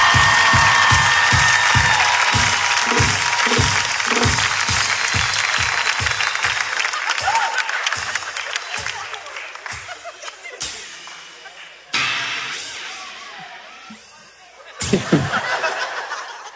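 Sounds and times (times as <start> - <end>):
steady rhythmic low pulse: 0.0 - 5.6
audience applause and cheering at a live comedy show in a theater: 0.0 - 12.2
laughter: 6.5 - 11.9, 13.9 - 16.5.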